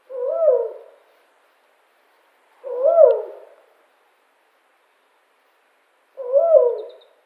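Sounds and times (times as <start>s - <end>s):
male Tawny Owl mauritanica call: 0.0s - 1.1s, 2.6s - 3.6s, 6.2s - 7.2s.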